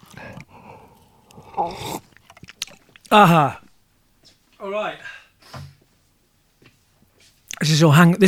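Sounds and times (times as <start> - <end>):
person slurping a cold latte without milk or ice: 0.0 - 3.1
soft mouth sounds: 0.0 - 3.7
speech: 1.6 - 2.0, 3.1 - 3.6, 4.6 - 5.1, 7.6 - 8.2.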